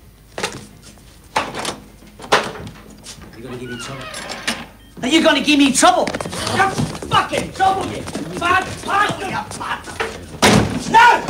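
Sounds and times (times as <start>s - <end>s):
door opening with clattering knocks and rattles: 1.4s - 4.8s, 5.9s - 11.2s
speech: 3.4s - 4.4s, 5.0s - 10.2s.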